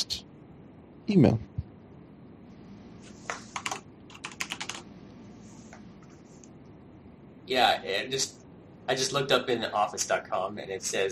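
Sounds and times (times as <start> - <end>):
speech: 1.1 - 1.6, 7.5 - 11.1
typing on a computer keyboard: 3.5 - 4.9.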